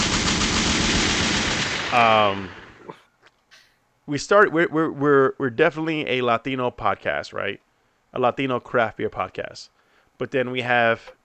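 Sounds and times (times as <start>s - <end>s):
rapid gunfire sound effect: 0.0s - 2.7s
speech: 1.9s - 2.6s, 4.1s - 11.2s.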